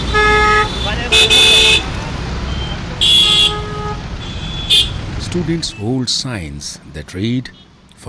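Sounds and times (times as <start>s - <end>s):
vehicle horns honking in rush-hour traffic on Tonk Road in Jaipur India: 0.0s - 6.0s
rush-hour traffic of cars scooters motorcycles and tuk-tuks: 0.0s - 8.0s
speech: 5.4s - 8.0s.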